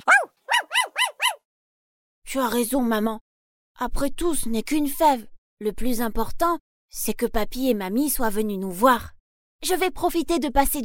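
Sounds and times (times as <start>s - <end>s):
puppy barking excitedly: 0.0s - 1.4s
speech: 2.3s - 3.2s, 3.8s - 10.8s.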